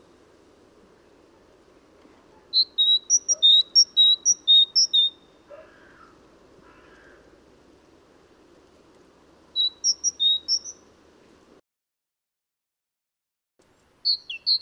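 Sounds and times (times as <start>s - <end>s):
great tit song: 2.5s - 6.0s, 13.6s - 14.6s.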